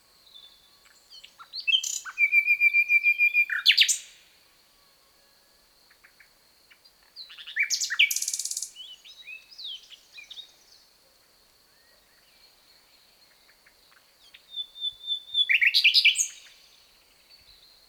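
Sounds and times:
common nightingale Luscinia megarhynchos singing: 0.2s - 4.2s, 7.2s - 10.9s, 11.8s - 17.8s.

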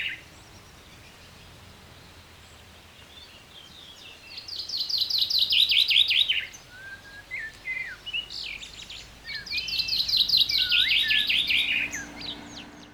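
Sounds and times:
Common chaffinch Fringilla coelebs singing descending trills: 4.4s - 12.9s.

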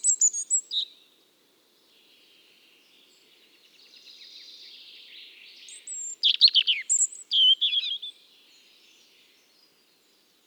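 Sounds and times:
European robin Erithacus rubecula singing: 0.0s - 1.0s, 5.7s - 8.2s.

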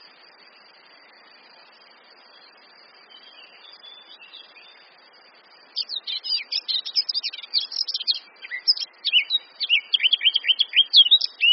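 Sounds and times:
Eurasian blackcap warbling song: 2.3s - 5.0s, 5.7s - 11.5s.

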